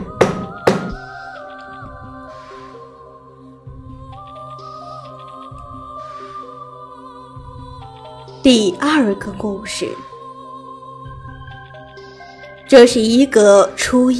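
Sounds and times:
knocking on a door: 0.0s - 1.0s
low eerie sustained musical drone: 0.0s - 14.1s
speech: 8.4s - 10.1s, 12.7s - 14.1s.

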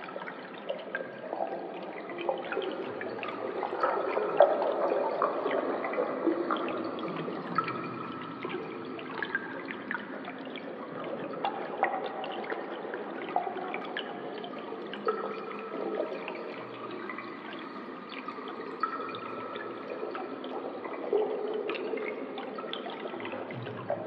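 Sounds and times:
water dripping in a cave: 0.0s - 24.0s.

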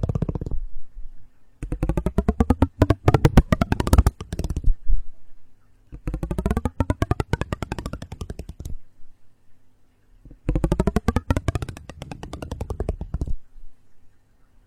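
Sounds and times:
creaking rattling buzz of rapid clicks like a small vibrating motor: 1.6s - 4.7s, 6.0s - 8.8s, 10.3s - 13.4s.

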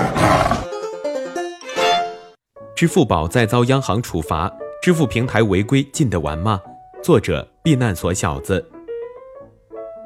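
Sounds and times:
tiger roaring: 0.0s - 0.7s
speech: 2.8s - 8.7s.

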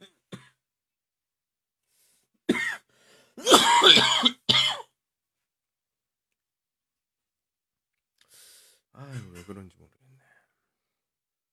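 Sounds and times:
person coughing and clearing their throat harshly: 2.5s - 2.8s, 3.4s - 4.9s, 9.0s - 9.6s.

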